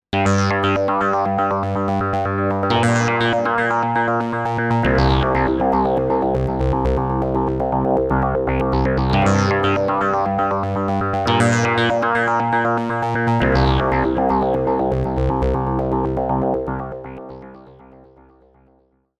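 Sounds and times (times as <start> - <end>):
Buchla synthesizer: 0.1 - 18.7.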